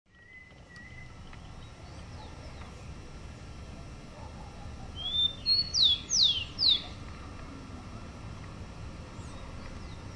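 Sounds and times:
rufous-collared sparrow song: 0:00.1 - 0:03.1, 0:03.8 - 0:07.1, 0:09.0 - 0:10.1.

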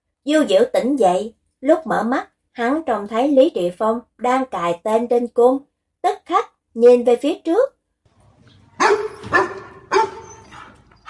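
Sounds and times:
speech: 0:00.2 - 0:07.8
dog barking fiercely: 0:08.7 - 0:11.0.

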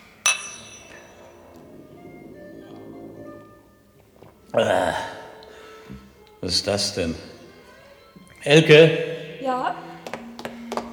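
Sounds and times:
glasses clinking in a toast with Bloody Mary: 0:00.2 - 0:01.6
speech: 0:04.5 - 0:05.1, 0:06.5 - 0:07.3, 0:08.4 - 0:09.8.

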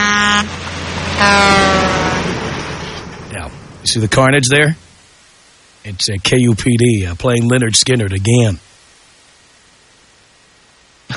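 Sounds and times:
truck air horn blasts: 0:00.0 - 0:02.6
rumbling background: 0:00.0 - 0:09.6
speech: 0:01.2 - 0:01.6, 0:03.8 - 0:04.8, 0:05.8 - 0:08.7.

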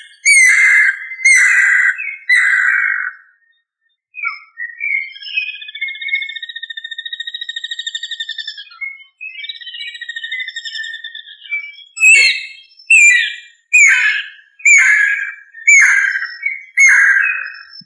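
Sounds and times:
bird song with harsh scratchy phrases and buzzy trills: 0:00.0 - 0:17.8.

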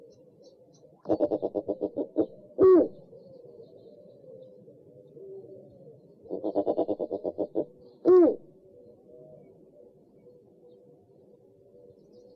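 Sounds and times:
owl hooting: 0:01.0 - 0:04.6, 0:05.2 - 0:09.9.

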